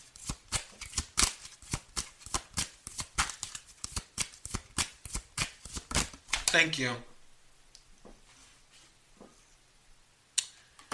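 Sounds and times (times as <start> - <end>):
tarot cards being shuffled by hand: 0.1 - 6.7
speech: 6.5 - 7.1.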